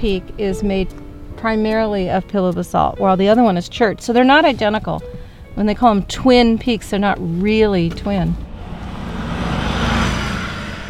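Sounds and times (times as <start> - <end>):
speech: 0.0 - 8.5
tour bus roaring past: 7.8 - 10.8.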